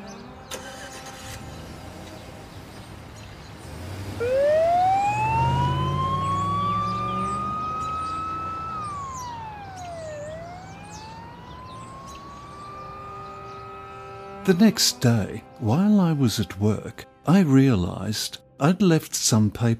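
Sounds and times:
low ambulance engine rumble: 0.1 - 15.6
ambulance siren wailing: 4.2 - 15.8
speech: 14.5 - 19.7.

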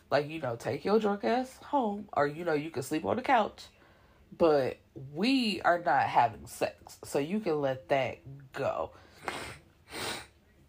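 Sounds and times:
speech: 0.1 - 10.0
sneeze or snort from someone with a cold: 9.2 - 10.3.

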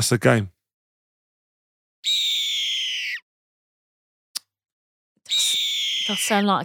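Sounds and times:
speech: 0.0 - 0.6, 6.1 - 6.6
newly born baby eagle calling: 2.0 - 3.3, 5.3 - 6.6.

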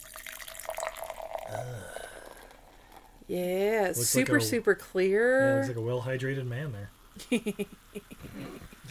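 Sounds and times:
sparkling apple-scented liquid poured from a bottle into a glass: 0.0 - 4.5
speech: 1.5 - 2.0, 3.3 - 8.8.

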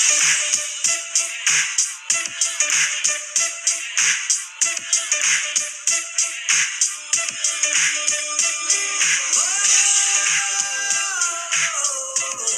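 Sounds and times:
older-style R&B song with hip-hop and soul feel from a small phone speaker: 0.0 - 12.5.

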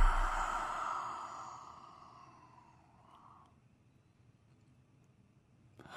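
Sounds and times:
person breathing heavily with wheezy moaning exhale: 0.0 - 2.4.

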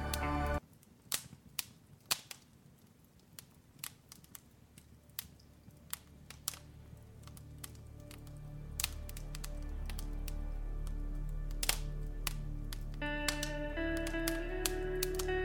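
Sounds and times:
soft low relaxing music: 0.0 - 0.6, 5.0 - 15.4
fireplace crackling with sharp irregular pops: 0.0 - 15.4.

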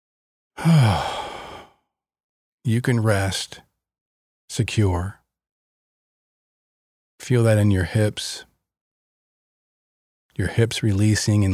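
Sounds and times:
speech: 0.6 - 1.1, 2.6 - 3.6, 4.5 - 5.2, 7.2 - 8.5, 10.4 - 11.5
person exhaling a big sigh during a guided meditation: 0.6 - 1.8.

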